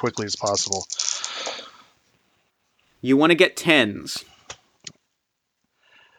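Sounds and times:
speech: 0.0s - 1.1s, 3.0s - 4.3s
dice tumbling in a tabletop game: 0.0s - 1.7s.

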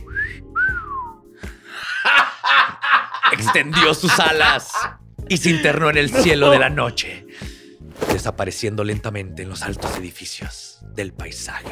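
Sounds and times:
person imitating a loud wolf whistle with their mouth: 0.0s - 1.2s
laughter: 1.8s - 7.0s
speech: 3.4s - 7.2s, 8.2s - 11.7s.

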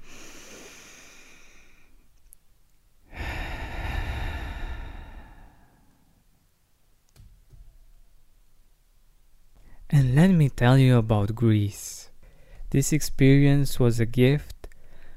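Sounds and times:
slow deep breath in and out: 0.0s - 2.1s, 3.0s - 6.3s, 12.2s - 12.7s, 14.8s - 15.1s
speech: 9.9s - 12.1s, 12.7s - 14.5s.

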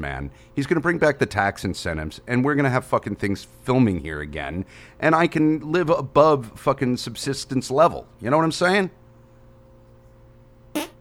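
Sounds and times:
speech: 0.0s - 9.0s
low hum: 0.0s - 10.9s
short loud raspy fart: 10.8s - 10.9s.

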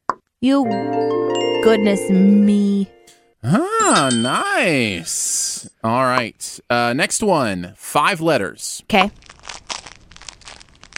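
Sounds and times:
speech: 0.4s - 9.3s
crinkling and crumpling: 9.0s - 10.9s.

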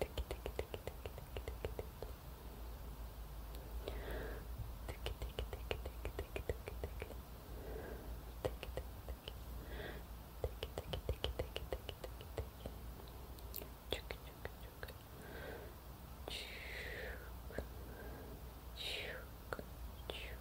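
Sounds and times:
hand movement clicks and taps: 0.0s - 2.2s, 4.9s - 7.2s, 8.4s - 9.4s, 10.4s - 12.8s
short rising chirp-like mouth noises: 0.0s - 2.2s, 4.8s - 7.2s, 8.4s - 9.4s, 10.4s - 15.0s
steady low hum: 0.0s - 20.3s.

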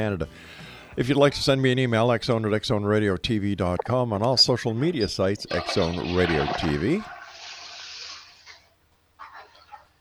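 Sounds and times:
speech: 0.0s - 7.2s
toilet water gurgling: 4.8s - 9.9s
toilet flushing: 5.4s - 8.8s.

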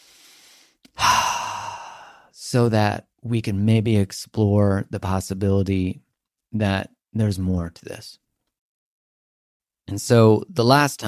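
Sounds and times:
deep breath through the nose: 0.0s - 2.3s
speech: 2.5s - 8.2s, 9.9s - 11.0s
click: 8.4s - 8.6s.

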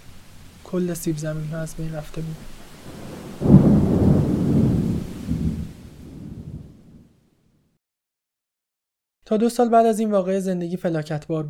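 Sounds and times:
rushing rain in Ireland: 0.0s - 7.1s
speech: 0.7s - 2.6s, 9.3s - 11.4s
wind storm in Ireland roaring: 2.7s - 7.1s.

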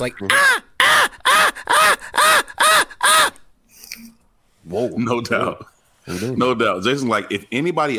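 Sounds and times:
speech: 0.0s - 0.6s, 4.6s - 7.9s
voice imitating annoying bird chirping at a practice field: 0.2s - 3.5s.

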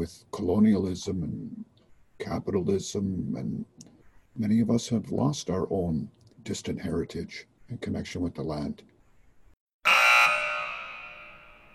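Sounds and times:
speech: 0.0s - 3.8s, 4.4s - 8.9s
single loud harsh buzzer with ringing tone: 9.8s - 11.7s.

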